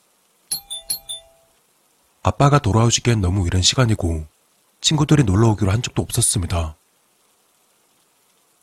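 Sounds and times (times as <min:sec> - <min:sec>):
electronic doorbell chiming ding-dong: 0:00.5 - 0:01.5
speech: 0:02.3 - 0:06.8.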